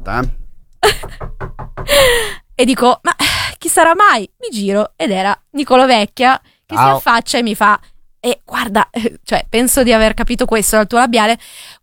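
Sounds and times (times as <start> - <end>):
speech: 0.0 - 1.2, 1.9 - 11.8
quick knocks re-enacting knocking heard at a studio: 0.0 - 2.7.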